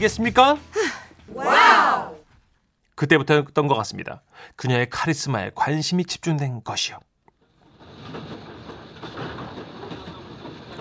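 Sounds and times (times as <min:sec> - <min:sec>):
speech: 0:00.0 - 0:01.6, 0:03.0 - 0:07.1
train wheels clattering on tracks: 0:07.4 - 0:10.8.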